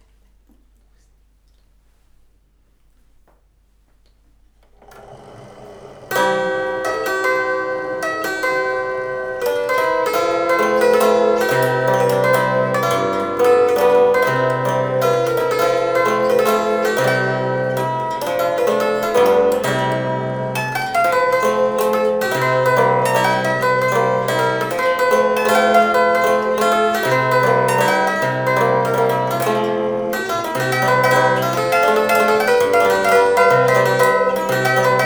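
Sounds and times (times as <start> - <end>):
1904 German automatic zither playing: 4.7 - 35.0.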